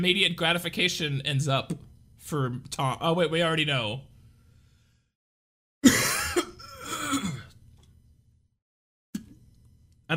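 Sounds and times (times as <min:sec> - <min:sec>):
speech: 0:00.0 - 0:04.1
person coughing raspily: 0:05.8 - 0:07.6
throat clearing: 0:05.8 - 0:07.6.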